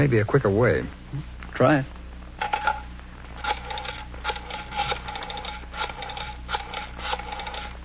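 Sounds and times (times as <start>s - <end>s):
speech: 0.0s - 2.0s
telephone being dialed with short bright clicks: 3.4s - 7.7s.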